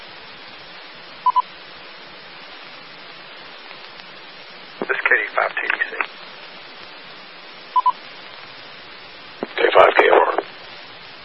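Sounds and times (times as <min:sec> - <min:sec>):
steady radio-like hiss: 0:00.0 - 0:11.2
quick identical electronic beeps from a phone: 0:07.8 - 0:08.0.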